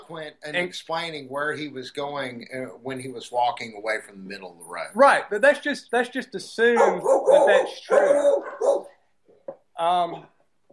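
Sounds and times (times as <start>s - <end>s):
speech: 0.1s - 8.8s, 9.8s - 10.3s
dog barking: 6.8s - 9.0s.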